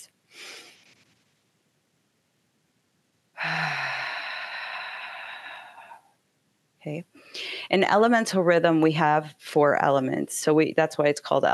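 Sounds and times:
deep breath in through the nose and out through the mouth during a breathing exercise: 3.4s - 6.2s, 7.2s - 7.7s
speech: 6.8s - 11.5s.

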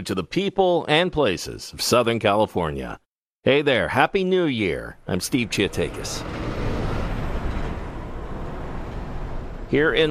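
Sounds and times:
speech: 0.0s - 6.5s, 9.7s - 10.0s
heavy container trucks rumbling past at a busy intersection: 5.2s - 10.0s.

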